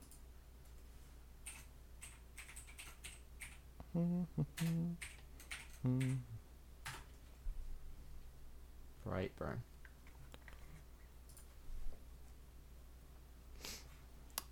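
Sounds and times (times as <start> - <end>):
typing on a computer keyboard: 1.4 - 3.6, 4.6 - 6.2, 6.8 - 7.2
speech: 3.9 - 5.1, 5.8 - 6.4, 9.0 - 9.7.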